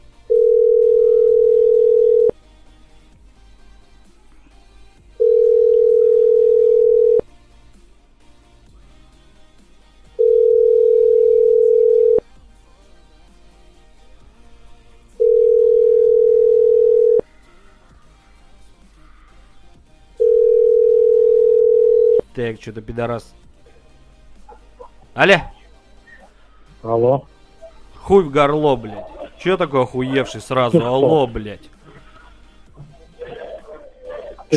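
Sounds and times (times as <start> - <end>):
telephone line tone beeps after dialing a number: 0.3 - 2.3, 5.2 - 7.2, 10.2 - 12.2, 15.2 - 17.2, 20.2 - 22.2
speech: 22.4 - 23.6, 25.2 - 25.5, 26.8 - 27.4, 28.0 - 31.7
laughter: 27.6 - 34.5.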